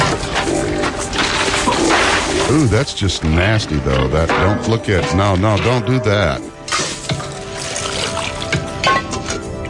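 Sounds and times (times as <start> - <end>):
water sloshing and splashing in a sink: 0.2 - 2.7, 6.5 - 9.6
speech: 2.5 - 6.5.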